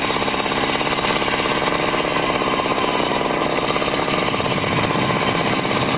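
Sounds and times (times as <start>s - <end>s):
heavy truck-mounted drill grinding and hammering into the ground: 0.0s - 5.9s.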